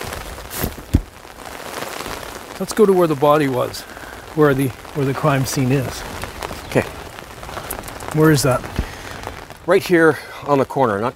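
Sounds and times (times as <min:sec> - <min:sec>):
heavy rain pouring down: 0:00.0 - 0:11.1
sharp drop-like thud: 0:00.5 - 0:01.1
speech: 0:02.6 - 0:06.2, 0:08.1 - 0:08.8, 0:09.6 - 0:11.1.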